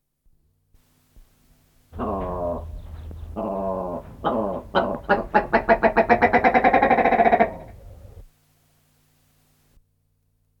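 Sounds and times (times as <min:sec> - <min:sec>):
willow ptarmigan harsh nasal croaks and clucking rattle: 0:02.0 - 0:08.3.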